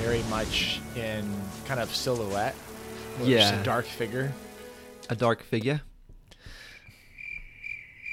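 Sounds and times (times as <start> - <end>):
speech: 0.2 - 4.5, 5.1 - 6.6
crickets chirping: 6.9 - 8.1.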